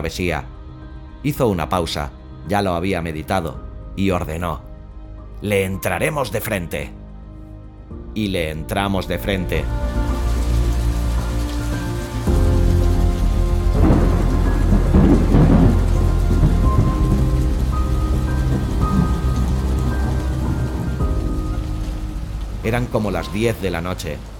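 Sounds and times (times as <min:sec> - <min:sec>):
speech: 0:00.0 - 0:00.5, 0:01.2 - 0:04.7, 0:05.4 - 0:07.0, 0:08.2 - 0:10.1, 0:22.6 - 0:24.3
heavy rain pouring at sea: 0:09.3 - 0:24.3
deep thunder rumbling amid lightning: 0:09.6 - 0:24.3.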